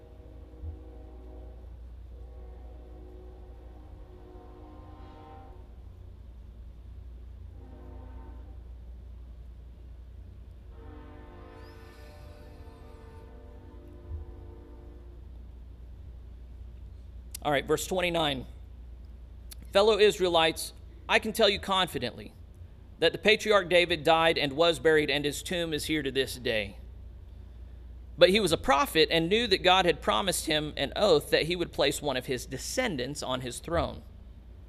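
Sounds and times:
train horn harmonic blasts: 0:00.0 - 0:06.0, 0:07.5 - 0:08.9, 0:10.7 - 0:15.6
low rumble of a passing train: 0:00.0 - 0:34.6
speech: 0:17.4 - 0:18.6, 0:19.7 - 0:22.4, 0:23.0 - 0:26.8, 0:28.2 - 0:34.1.

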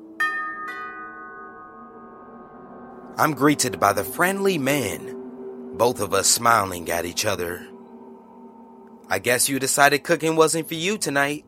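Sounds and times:
doorbell ding-dong chime: 0:00.2 - 0:04.2
speech: 0:03.2 - 0:05.2, 0:05.8 - 0:07.8, 0:09.1 - 0:11.4.

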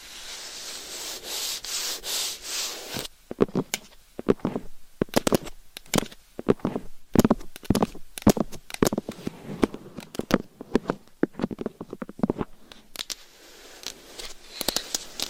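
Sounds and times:
claws tapping against a microphone: 0:03.3 - 0:13.2.

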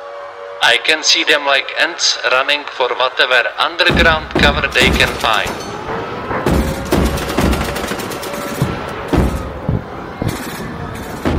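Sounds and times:
speech: 0:00.6 - 0:05.7
anti-aircraft guns firing during a midnight air raid over Moscow: 0:03.8 - 0:09.6
heavy booming shots: 0:03.8 - 0:11.3
dense machine-gun-like rattling: 0:03.9 - 0:05.6, 0:06.5 - 0:09.5.

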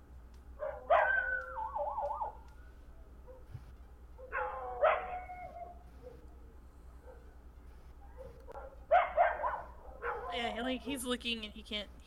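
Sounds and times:
steady low hum: 0:00.0 - 0:12.0
dog barking: 0:00.6 - 0:02.4, 0:03.2 - 0:03.6, 0:04.2 - 0:06.4, 0:07.0 - 0:07.4, 0:08.0 - 0:10.6
speech: 0:10.6 - 0:12.0.

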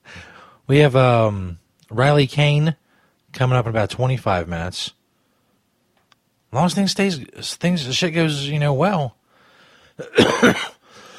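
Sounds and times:
speech: 0:00.7 - 0:05.0, 0:06.5 - 0:09.2, 0:10.0 - 0:10.7
harsh cough: 0:10.0 - 0:10.8.

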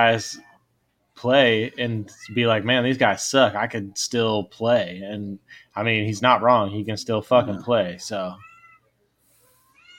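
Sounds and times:
speech: 0:00.0 - 0:00.5, 0:01.2 - 0:08.5
cat in heat yowling: 0:08.4 - 0:08.9, 0:09.6 - 0:09.9.

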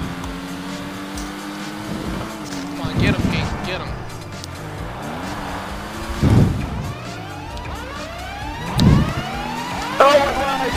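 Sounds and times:
trophy truck engine revving: 0:00.0 - 0:10.7
trophy truck tires skidding: 0:00.0 - 0:10.7
heavy low thumps: 0:02.7 - 0:07.8.

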